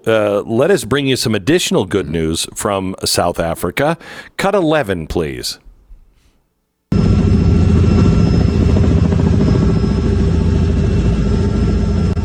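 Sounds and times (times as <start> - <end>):
speech: 0.0 - 5.6
helicopter rotor chop overhead: 6.9 - 12.2.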